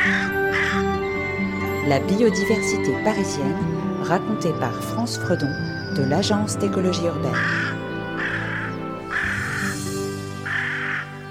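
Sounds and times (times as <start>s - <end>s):
carrion crow cawing in Paris: 0.0s - 1.4s, 7.3s - 11.2s
speech: 1.8s - 7.8s.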